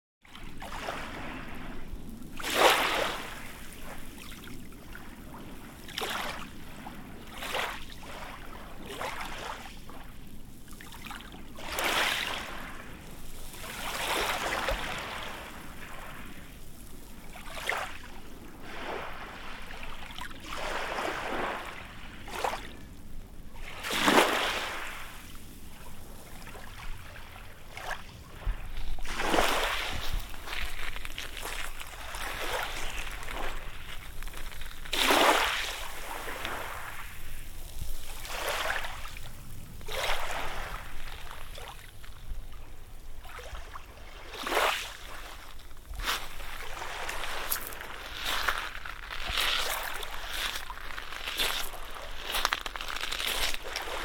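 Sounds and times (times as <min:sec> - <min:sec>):
gentle waves at Whitstable: 0:00.2 - 0:54.0
footsteps on shingle at Whitstable: 0:28.7 - 0:38.4, 0:45.5 - 0:54.0.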